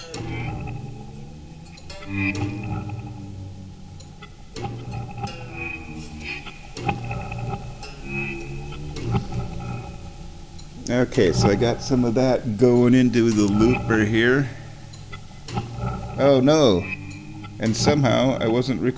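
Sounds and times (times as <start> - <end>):
synthesized humpback whale calls: 0.0 - 18.9
speech: 11.0 - 14.6, 16.2 - 17.0, 17.6 - 18.9.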